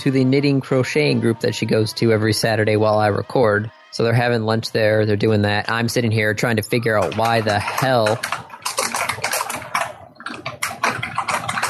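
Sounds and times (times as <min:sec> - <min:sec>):
speech: 0:00.0 - 0:08.5
typing on a computer keyboard: 0:05.6 - 0:11.6.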